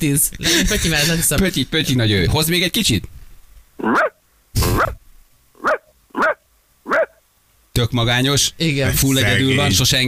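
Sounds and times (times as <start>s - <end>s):
speech: 0.0s - 3.2s, 7.8s - 10.0s
dog barking: 3.8s - 5.0s, 5.6s - 7.2s.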